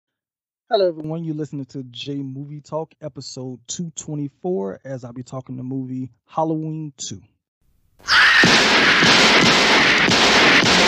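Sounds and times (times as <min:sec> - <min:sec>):
speech: 0:00.7 - 0:07.3
gunshots from a horror film: 0:08.3 - 0:10.8.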